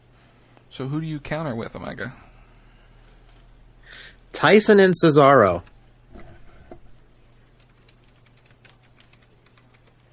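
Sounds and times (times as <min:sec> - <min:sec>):
low steady hum: 0:00.0 - 0:10.1
speech: 0:00.8 - 0:02.3, 0:04.4 - 0:05.7
typing on a computer keyboard: 0:07.6 - 0:10.0.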